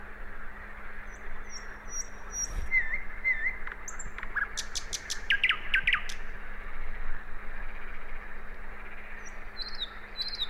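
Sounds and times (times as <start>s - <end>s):
common nightingale singing, Luscinia megarhynchos: 0.9s - 6.3s, 7.7s - 10.4s.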